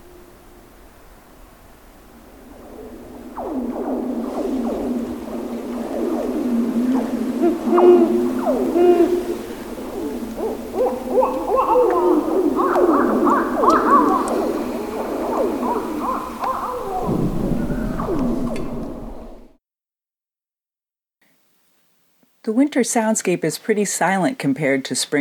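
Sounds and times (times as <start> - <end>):
faint hiss: 0.0 - 19.5, 21.2 - 25.2
owls hooting at night in winter: 0.0 - 19.5
speech: 22.8 - 25.2.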